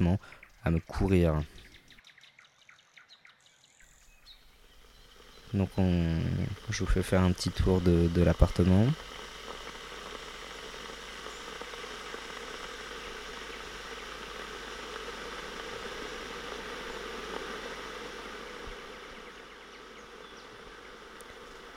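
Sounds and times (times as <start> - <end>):
speech: 0.0 - 1.6, 5.5 - 9.2
electric kettle heating water: 4.3 - 21.7.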